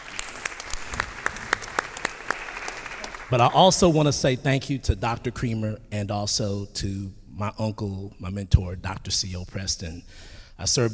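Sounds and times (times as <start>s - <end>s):
audience clapping hands: 0.0s - 4.0s
speech: 3.3s - 10.9s.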